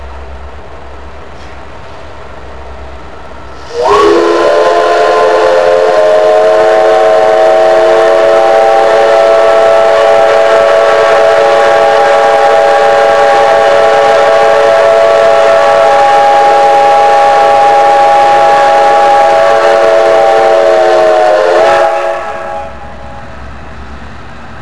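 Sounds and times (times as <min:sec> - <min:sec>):
five o'clock whistle blowing: 0:03.6 - 0:23.1.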